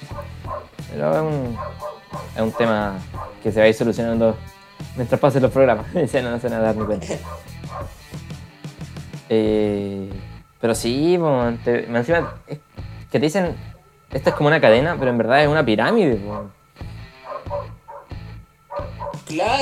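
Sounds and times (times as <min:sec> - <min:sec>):
dogs barking outside: 0:00.0 - 0:03.6, 0:06.5 - 0:08.2, 0:12.0 - 0:12.6, 0:13.6 - 0:15.0, 0:16.0 - 0:19.3
speech: 0:00.9 - 0:08.0, 0:09.3 - 0:16.6, 0:19.3 - 0:19.5
laughter: 0:06.7 - 0:07.6.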